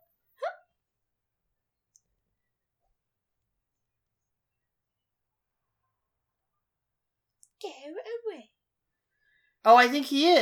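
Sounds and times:
sharp hiccup-like vocal gulp: 0.4s - 0.7s
speech: 7.6s - 8.5s, 9.6s - 10.3s.

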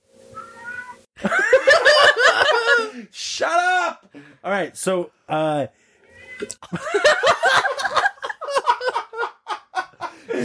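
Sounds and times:
cat meowing outside a window: 0.4s - 1.1s, 6.1s - 6.6s
laughter: 1.2s - 3.0s, 6.6s - 10.4s
speech: 4.4s - 5.8s, 6.4s - 7.3s.

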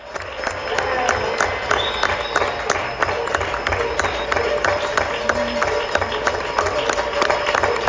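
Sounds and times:
people clapping from balconies on a street in Madrid Spain: 0.0s - 7.8s
faint cheers: 0.7s - 7.8s
scattered voices: 2.6s - 7.8s.

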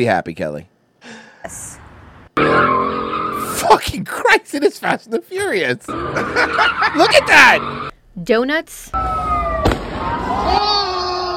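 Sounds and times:
speech: 0.0s - 1.8s, 2.4s - 9.2s
laughter: 6.0s - 7.6s
fireworks whistling and shrieking: 9.0s - 10.4s.

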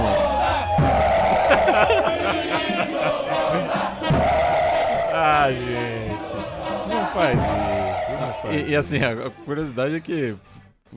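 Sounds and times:
large crowd of football fans chanting a rhythmic war whoop in a stadium: 0.0s - 8.8s
laughter: 1.3s - 4.0s
speech: 5.4s - 10.9s.

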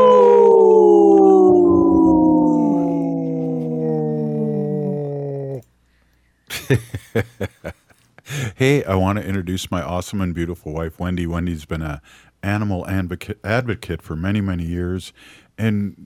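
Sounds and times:
wolf howling: 0.0s - 5.7s
speech: 6.7s - 7.4s, 8.6s - 16.0s.

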